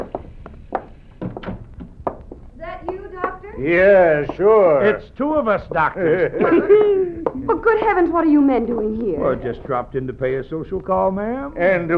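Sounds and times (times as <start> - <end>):
door creaking as it swings open: 1.1 - 2.0
speech: 3.6 - 11.9
laughter: 4.8 - 7.9.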